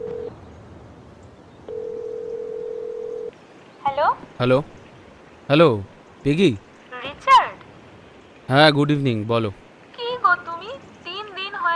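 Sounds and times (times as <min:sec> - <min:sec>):
telephone line tone as a call connects: 0:00.0 - 0:00.3, 0:01.7 - 0:03.3
speech: 0:04.0 - 0:04.8, 0:05.5 - 0:06.7, 0:08.5 - 0:09.6.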